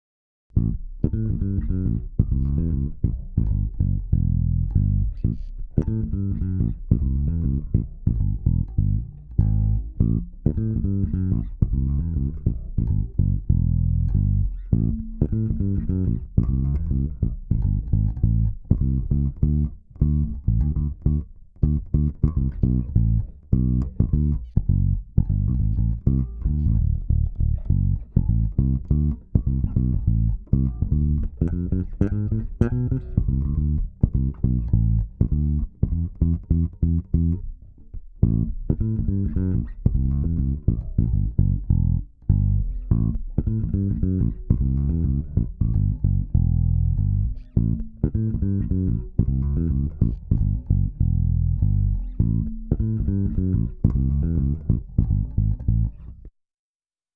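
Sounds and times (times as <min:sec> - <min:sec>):
bass: 0:00.4 - 0:56.4.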